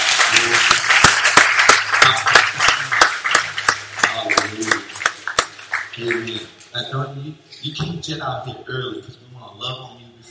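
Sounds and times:
dense wash of scattered applause: 0.0s - 6.5s
audience at a Christian worship service clapping hands in rhythm: 0.0s - 6.6s
speech: 6.9s - 10.2s.

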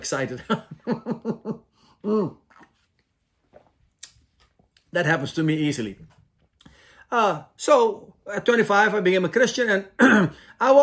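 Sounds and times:
speech: 0.0s - 2.4s, 4.9s - 6.2s, 7.1s - 10.8s
laughter: 0.4s - 1.6s
person sipping and swallowing water: 2.1s - 4.9s.

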